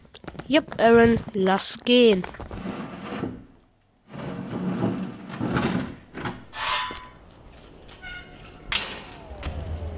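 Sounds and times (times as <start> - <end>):
speech: 0.5 - 2.5
wooden door rubbing and scraping: 2.4 - 9.2.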